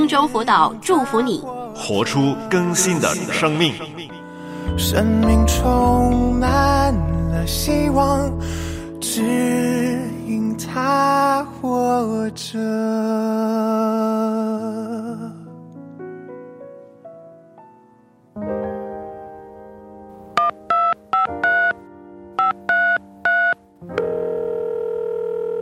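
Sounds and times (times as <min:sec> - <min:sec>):
speech: 0:00.1 - 0:04.1, 0:04.7 - 0:15.4
touch-tone telephone dialing: 0:20.4 - 0:21.8, 0:22.4 - 0:25.6.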